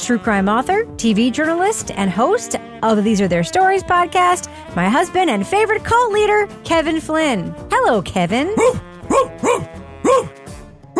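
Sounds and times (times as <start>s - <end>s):
speech: 0.0s - 10.3s
person imitating a dog barking with yelping woofs: 8.5s - 10.4s.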